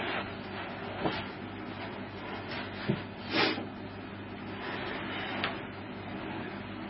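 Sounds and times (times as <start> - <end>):
air conditioner running: 0.0 - 6.8.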